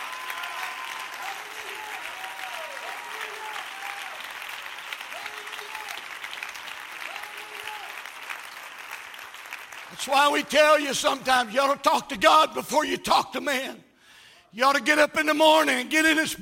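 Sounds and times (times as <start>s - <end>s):
audience shouts and vocal whoops: 0.0s - 4.4s, 5.1s - 6.1s, 7.0s - 8.1s
large audience applause: 0.0s - 10.8s
speech: 10.0s - 13.8s, 14.5s - 16.4s.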